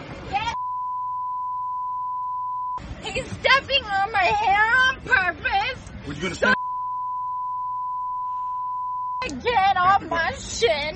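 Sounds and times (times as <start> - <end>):
censor bleep tone covering swearing: 0.6 - 2.8, 6.6 - 9.3
speech: 3.0 - 6.6, 9.3 - 10.9.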